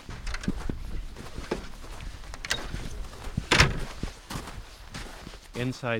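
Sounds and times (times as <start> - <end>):
heavy reindeer-skin-covered doors in an ice hotel wall pushed open: 0.0 - 4.0
thumps and shuffling: 0.0 - 5.2
soft rustling: 0.0 - 5.7
speech: 5.6 - 5.9.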